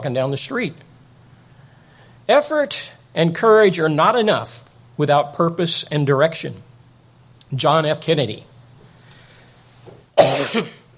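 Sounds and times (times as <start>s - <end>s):
speech: 0.0s - 0.9s, 2.3s - 6.7s, 7.5s - 8.5s, 10.2s - 10.8s
single sharp throaty cough: 10.2s - 10.9s.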